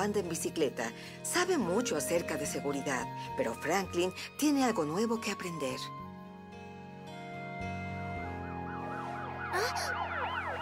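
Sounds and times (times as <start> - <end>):
speech: 0.0 - 6.0
fire truck siren: 8.1 - 10.5.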